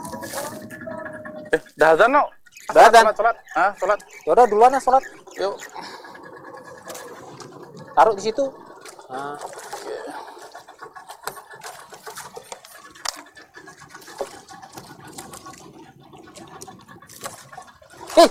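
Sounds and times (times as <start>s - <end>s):
speech: 1.5s - 5.9s, 8.0s - 10.2s
sea water pouring and splashing for ablution before prayer: 6.8s - 18.2s.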